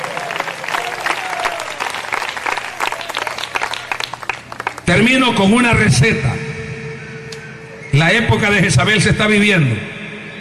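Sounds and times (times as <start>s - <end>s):
audience clapping loudly as applause to the Lord: 0.0s - 5.2s
speech: 4.9s - 6.4s, 8.0s - 9.9s.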